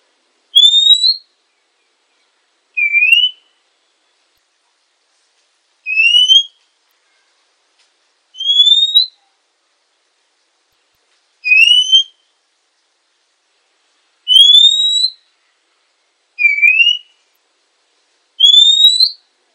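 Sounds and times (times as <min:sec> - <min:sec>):
female Oriental magpie-robin whistled notes: 0:00.6 - 0:01.3, 0:02.8 - 0:03.5, 0:05.9 - 0:06.6, 0:08.4 - 0:09.3, 0:11.4 - 0:12.3, 0:14.3 - 0:15.2, 0:16.4 - 0:17.2, 0:18.4 - 0:19.2.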